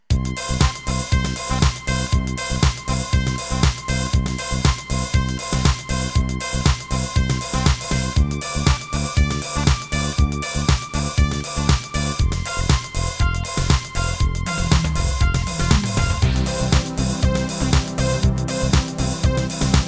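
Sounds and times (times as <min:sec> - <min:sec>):
techno music: 0:00.1 - 0:19.8.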